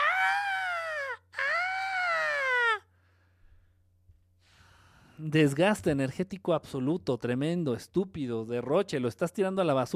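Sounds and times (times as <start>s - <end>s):
person imitating a frenzied fan screaming at a concert: 0.0s - 2.9s
speech: 5.2s - 9.9s.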